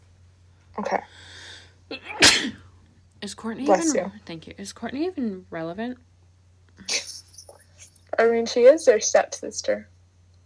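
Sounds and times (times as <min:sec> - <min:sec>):
faint low hum: 0:00.0 - 0:10.4
speech: 0:00.8 - 0:02.6, 0:03.2 - 0:06.1, 0:08.2 - 0:09.9
sneeze: 0:01.9 - 0:02.7.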